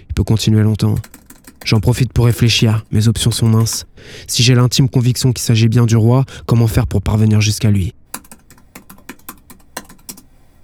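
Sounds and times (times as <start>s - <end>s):
speech: 0.2s - 8.0s
loud typing on computer keyboard: 1.0s - 4.4s, 8.1s - 10.6s.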